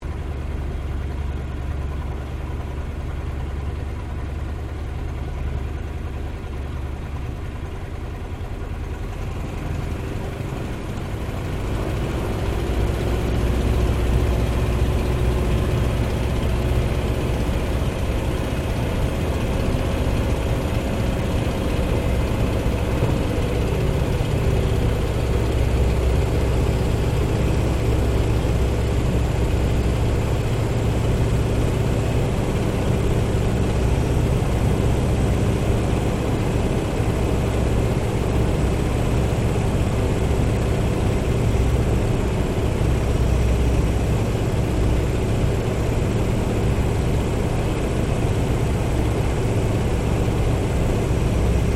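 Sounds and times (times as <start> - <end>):
1916 Sopwith Pup replica taking off heard from interior: 0.0 - 51.7.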